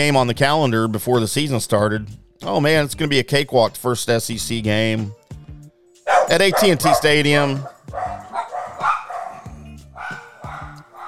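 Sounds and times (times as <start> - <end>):
speech: 0.0 - 5.2, 6.3 - 7.8
several dogs barking excitedly: 6.1 - 11.0.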